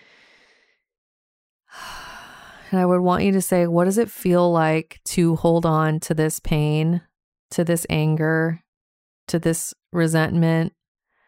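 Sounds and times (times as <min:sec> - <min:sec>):
deep breathing during a guided relaxation exercise: 0:00.0 - 0:00.8, 0:01.7 - 0:02.7
speech: 0:02.7 - 0:08.6, 0:09.3 - 0:10.8.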